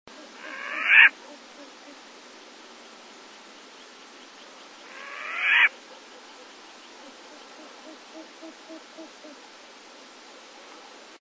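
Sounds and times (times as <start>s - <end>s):
Asio flammeus short-eared owl calling: 0.2s - 2.1s, 4.8s - 9.4s.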